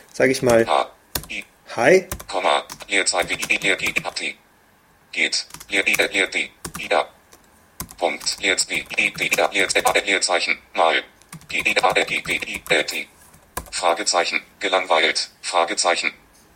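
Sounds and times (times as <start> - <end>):
speech: 0.2 - 4.4, 5.1 - 7.2, 8.0 - 13.1, 13.7 - 16.2
typing on a computer keyboard: 0.5 - 1.4, 2.1 - 4.2, 5.5 - 6.9, 7.8 - 10.0, 11.3 - 13.8.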